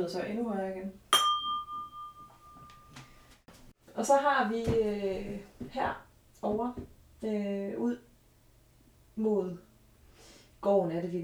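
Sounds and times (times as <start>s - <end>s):
speech: 0.0s - 1.0s, 4.0s - 8.1s, 9.2s - 9.7s, 10.6s - 11.2s
wine glass struck and ringing: 1.1s - 3.2s.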